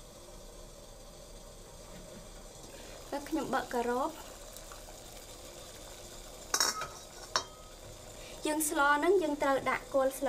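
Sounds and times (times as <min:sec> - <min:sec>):
faint bubbling of boiling water: 0:00.0 - 0:10.2
water in a pot roaring toward a strong boil over a high flame: 0:00.0 - 0:10.2
speech: 0:03.1 - 0:04.3, 0:08.5 - 0:10.2.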